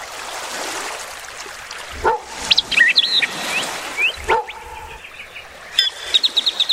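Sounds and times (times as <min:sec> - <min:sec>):
birds chirping and trilling on a lakeshore: 0:01.7 - 0:06.7
dog barking on a lakeshore: 0:02.0 - 0:02.4, 0:04.2 - 0:05.0.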